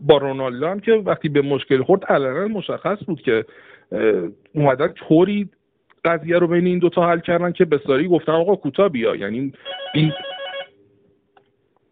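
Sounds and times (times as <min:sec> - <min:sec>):
speech: 0:00.1 - 0:10.3
telephone ringing: 0:09.6 - 0:10.8.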